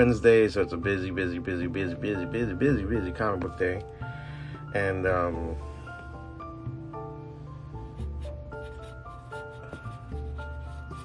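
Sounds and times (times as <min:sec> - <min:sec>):
speech: 0:00.0 - 0:05.7
music: 0:00.0 - 0:11.0
pencil strokes on paper: 0:07.9 - 0:11.0.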